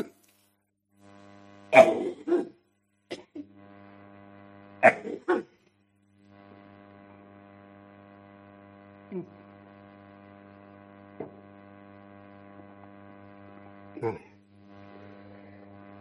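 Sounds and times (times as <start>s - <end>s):
steady electrical hum: 1.0s - 16.0s
harsh coughing: 1.7s - 3.5s, 4.8s - 5.6s.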